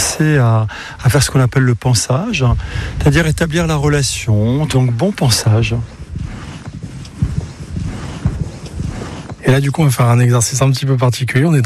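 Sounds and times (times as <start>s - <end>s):
speech: 0.2s - 6.0s, 9.5s - 11.6s
horse hooves clopping at a walk on a soft surface: 2.3s - 10.8s.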